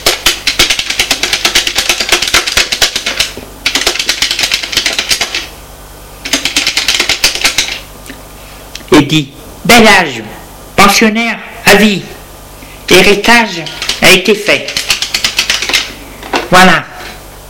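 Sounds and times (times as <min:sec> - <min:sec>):
woman typing rapidly on a computer keyboard: 0:00.0 - 0:05.5, 0:06.2 - 0:07.8, 0:13.7 - 0:15.9
speech: 0:09.1 - 0:12.2, 0:12.9 - 0:14.8, 0:16.5 - 0:16.9.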